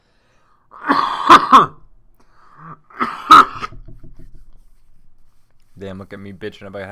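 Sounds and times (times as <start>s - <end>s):
faint breath: 0.0s - 0.7s
harsh throaty coughing with sharp hacks: 0.7s - 1.9s, 2.6s - 3.8s
speech: 5.8s - 6.9s.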